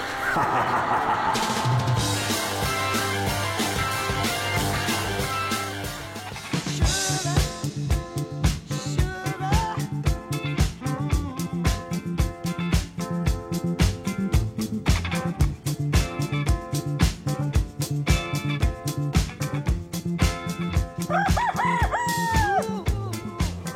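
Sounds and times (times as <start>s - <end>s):
laughter: 0.0s - 2.8s
loud rhythmic music: 0.0s - 23.7s
rooster crowing: 21.0s - 22.8s.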